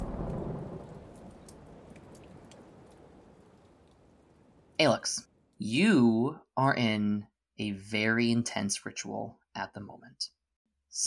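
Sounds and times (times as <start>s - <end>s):
brighter rain drips: 0.0s - 4.8s
low broad thunder rumble as a hurricane storm clears: 0.0s - 4.8s
steady soft rain falling on a beach: 0.0s - 5.8s
speech: 4.8s - 11.0s.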